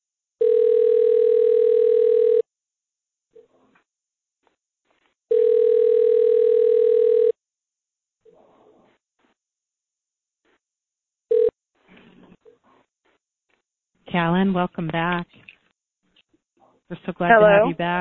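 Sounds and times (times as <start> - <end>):
electronic telephone dial tone: 0.4 - 2.4, 5.3 - 7.4, 11.3 - 11.5
speech: 14.2 - 15.5, 16.9 - 18.0.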